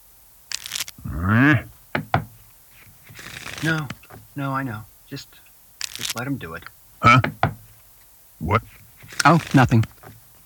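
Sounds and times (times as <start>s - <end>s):
playing cards being shuffled: 0.5s - 1.0s, 2.0s - 4.3s, 5.8s - 7.8s, 8.5s - 10.2s
person humming: 1.0s - 1.7s, 7.0s - 7.4s
speech: 3.6s - 5.5s, 6.1s - 7.4s, 8.4s - 10.0s
deck of cards tapped against a table: 7.1s - 7.7s.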